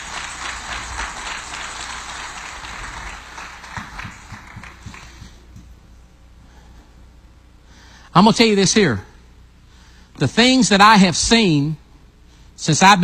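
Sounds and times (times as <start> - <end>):
large crowd clapping hands in praise: 0.0 - 5.5
speech: 8.2 - 9.1, 10.2 - 11.8, 12.6 - 13.0.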